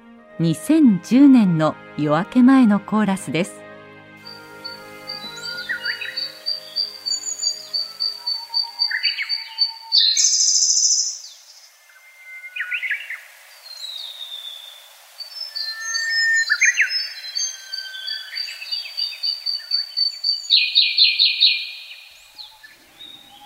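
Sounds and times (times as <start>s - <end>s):
speech: 0.4s - 3.6s
Japanese bush warbler calling: 4.2s - 14.2s, 15.3s - 23.4s
Siberian blue robin singing bright trilling phrases in a pre-dawn forest: 4.3s - 13.2s, 15.4s - 23.4s.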